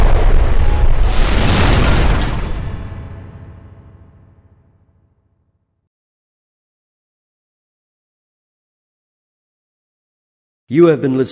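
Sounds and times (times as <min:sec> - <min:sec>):
explosion sound effect: 0:00.0 - 0:04.9.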